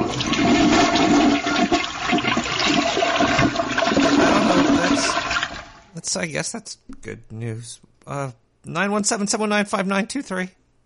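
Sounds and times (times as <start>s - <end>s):
toilet flushing: 0.0s - 5.9s
speech: 6.1s - 10.6s.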